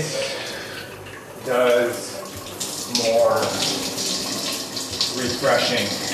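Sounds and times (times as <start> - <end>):
water running from a cold shower: 0.0 - 6.1
speech: 1.4 - 2.1, 2.9 - 4.0, 5.2 - 6.0.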